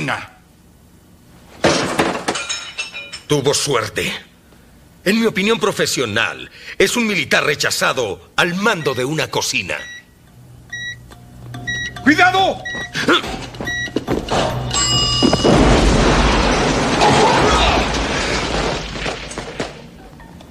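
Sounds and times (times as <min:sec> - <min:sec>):
speech: 0:00.0 - 0:00.4, 0:03.3 - 0:04.3, 0:05.0 - 0:10.0, 0:12.0 - 0:13.4
shattering debris: 0:13.2 - 0:20.0
bomb with microwave-oven detonator exploding in a kitchen: 0:15.3 - 0:19.4.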